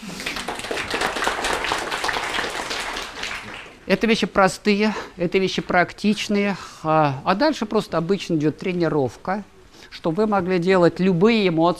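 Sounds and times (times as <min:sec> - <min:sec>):
audience applauding: 0:00.0 - 0:03.9
speech: 0:03.9 - 0:11.7.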